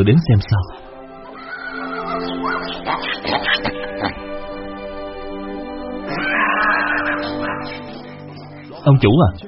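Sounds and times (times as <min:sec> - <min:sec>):
speech: 0:00.0 - 0:00.9, 0:08.8 - 0:09.4
pig squealing mournfully: 0:01.3 - 0:04.2, 0:06.0 - 0:08.1.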